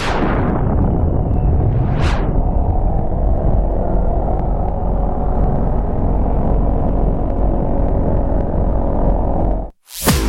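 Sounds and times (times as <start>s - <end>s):
sharp thunder crack: 0.0s - 2.6s
loud continuous low thunder rumbling: 0.0s - 9.7s.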